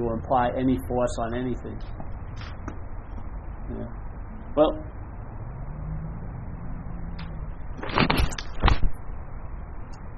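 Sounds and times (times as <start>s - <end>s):
speech: 0.0s - 2.6s, 3.7s - 5.0s
steady noise: 0.0s - 10.1s
car passing by: 5.0s - 7.8s.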